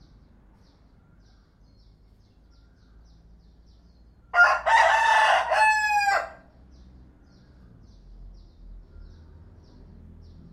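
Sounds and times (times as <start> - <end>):
rooster crowing: 4.3 - 6.5.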